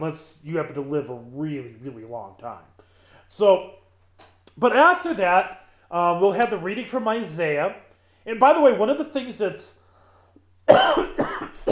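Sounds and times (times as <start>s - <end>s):
speech: 0.0s - 3.8s, 4.6s - 9.8s
person coughing harshly: 10.7s - 11.6s.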